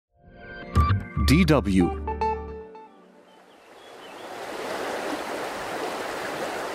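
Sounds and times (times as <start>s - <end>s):
speech: 1.3s - 2.1s
river water flowing: 3.2s - 6.7s.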